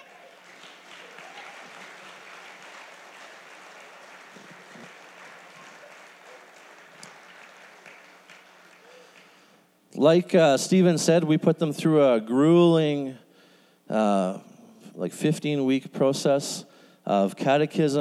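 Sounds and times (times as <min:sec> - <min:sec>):
church audience applauding newly presented catechumens: 0:00.0 - 0:09.6
speech: 0:10.0 - 0:13.2, 0:13.9 - 0:17.9.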